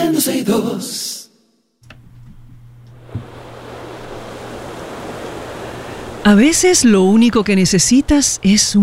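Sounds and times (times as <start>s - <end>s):
speech: 0.1s - 1.0s, 6.3s - 8.8s
ocean waves breaking on the shore: 2.9s - 8.8s
brief thump: 3.1s - 3.3s.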